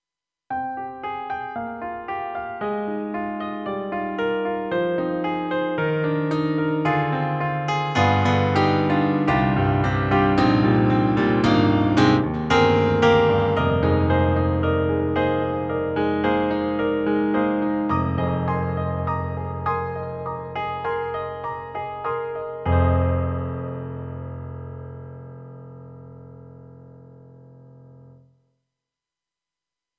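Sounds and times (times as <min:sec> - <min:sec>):
KORG M3 XPanded piano looper: 0:00.6 - 0:28.2.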